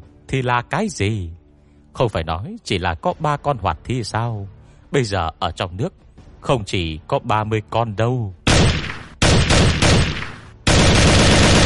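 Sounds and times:
speech: 0.3s - 1.4s, 2.0s - 8.4s
dense continuous gunfire from boats on the water: 8.5s - 11.6s.

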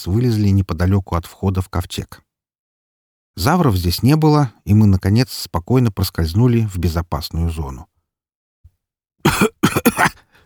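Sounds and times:
speech: 0.0s - 2.3s, 3.4s - 7.9s
person coughing harshly after inhaling poisonous gas: 9.3s - 10.4s.

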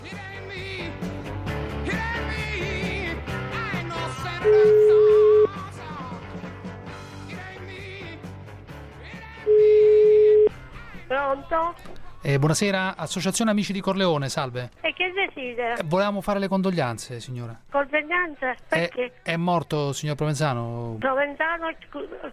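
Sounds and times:
telephone line tone for a call: 4.4s - 5.6s, 9.5s - 10.5s
busy noise: 11.0s - 22.3s
speech: 11.5s - 22.3s.

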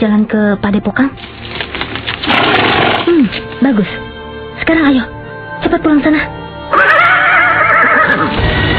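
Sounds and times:
speech: 0.0s - 1.5s, 3.1s - 4.0s, 4.6s - 7.0s, 8.1s - 8.6s
horse whinnying: 6.7s - 8.4s.

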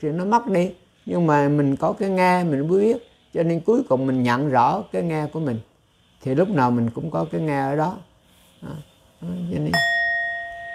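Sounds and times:
speech: 0.0s - 10.0s
single struck bell used during a Buddhist dharma talk ringing: 9.7s - 10.7s.

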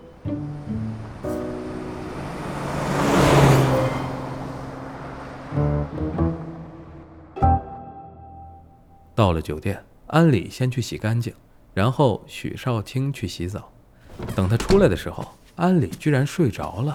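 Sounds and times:
car driving by: 0.0s - 7.4s
speech: 9.2s - 16.9s.

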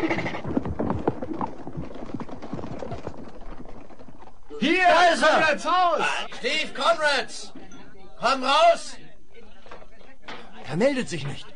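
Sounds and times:
hoofbeats of a horse running away: 0.0s - 4.6s
speech: 4.6s - 7.5s, 8.2s - 9.0s, 10.7s - 11.5s.

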